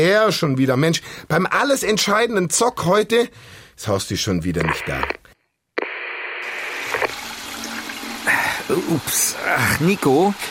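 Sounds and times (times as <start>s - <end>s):
speech: 0.0s - 5.2s, 8.7s - 10.4s
toilet flush running: 7.1s - 10.4s.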